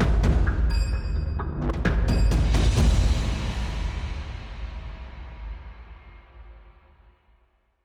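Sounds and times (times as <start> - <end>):
trance drum beat: 0.0 - 6.1.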